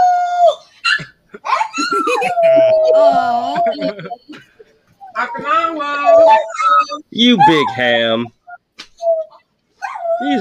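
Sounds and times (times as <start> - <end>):
dog howling: 0.0 - 0.6, 1.5 - 4.2, 5.2 - 7.8, 9.0 - 10.3
laughter: 1.3 - 4.8
speech: 3.0 - 4.5, 5.2 - 8.4, 10.2 - 10.3.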